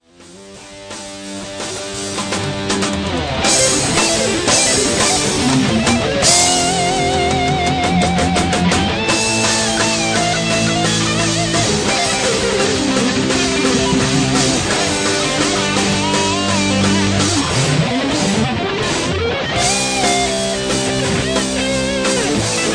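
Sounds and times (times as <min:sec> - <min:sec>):
groove guitar solo: 0:00.3 - 0:22.7.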